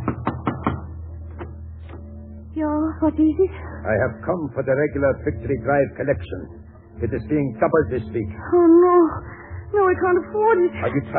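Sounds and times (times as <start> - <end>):
knocking on the front door of a home: 0.0 - 1.5
speech: 2.6 - 11.1.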